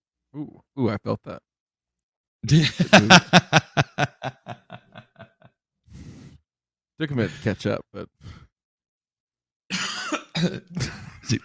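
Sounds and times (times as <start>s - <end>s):
speech: 0.3s - 1.5s, 2.4s - 4.6s, 7.0s - 8.4s, 10.4s - 11.4s
laughter: 2.5s - 5.5s
person coughing harshly: 9.7s - 11.1s.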